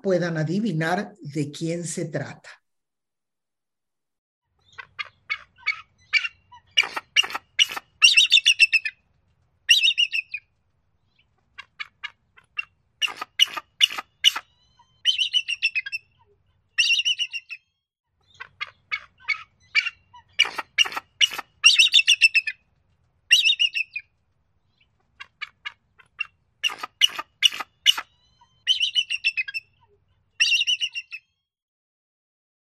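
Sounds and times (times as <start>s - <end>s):
speech: 0.0s - 2.6s
bald eagle chittering calls: 4.6s - 8.9s, 9.7s - 10.4s, 12.6s - 16.1s, 16.8s - 17.6s, 18.3s - 22.6s, 23.3s - 24.0s, 26.2s - 29.8s, 30.4s - 31.2s.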